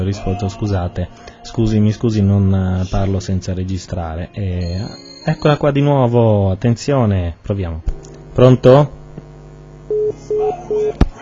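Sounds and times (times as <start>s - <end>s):
speech: 0.0s - 9.0s
phone line beeps on an incoming phone call: 4.6s - 5.6s, 9.8s - 11.0s.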